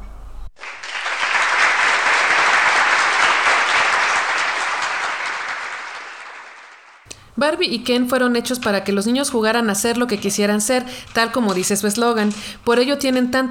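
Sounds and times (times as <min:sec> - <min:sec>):
crowd applause: 0:00.6 - 0:07.1
speech: 0:07.4 - 0:13.4.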